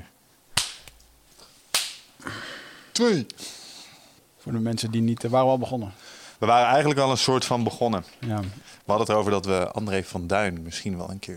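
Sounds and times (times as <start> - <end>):
sharp loud hand claps for recording sync: 0.6 - 1.0, 1.7 - 2.1
speech: 3.0 - 3.6, 4.4 - 11.3.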